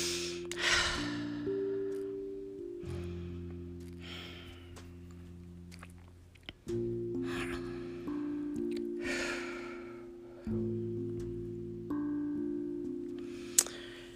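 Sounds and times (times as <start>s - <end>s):
slow deep breaths drawn in and released: 0.0s - 1.8s, 2.9s - 4.8s, 7.2s - 10.6s
soft sustained musical drone: 0.0s - 14.1s.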